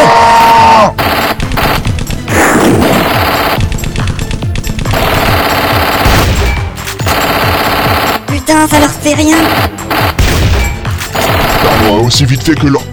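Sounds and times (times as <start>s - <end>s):
automatic machine-gun fire during an ambush: 1.0s - 8.3s, 9.4s - 12.0s
speech: 8.5s - 9.8s, 12.0s - 12.9s.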